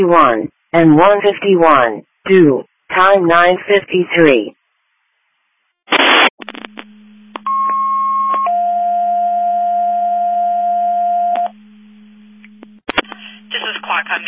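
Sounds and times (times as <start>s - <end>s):
speech: 0.0s - 4.6s, 13.9s - 14.2s
radio static: 5.9s - 7.0s, 12.6s - 14.2s
faint hum: 6.0s - 14.2s.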